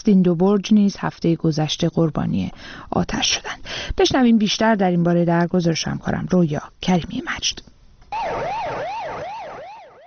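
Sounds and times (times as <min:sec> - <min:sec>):
speech: 0:00.0 - 0:08.9
fire engine siren wailing in Iran: 0:08.1 - 0:10.0.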